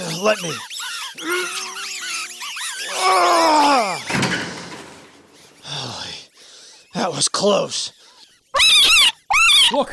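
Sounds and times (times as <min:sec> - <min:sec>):
speech: 0:00.2 - 0:01.6, 0:03.0 - 0:04.0, 0:07.0 - 0:08.0, 0:09.7 - 0:09.9
stuck door groaning and squealing as it is forced: 0:01.2 - 0:05.0
stuck door slamming shut: 0:04.0 - 0:05.1.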